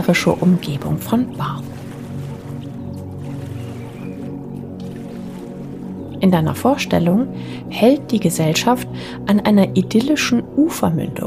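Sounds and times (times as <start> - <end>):
speech: 0.0 - 1.8, 6.2 - 11.2
water trickling and splashing around a boat: 0.0 - 7.7
boat engine droning: 0.0 - 10.7.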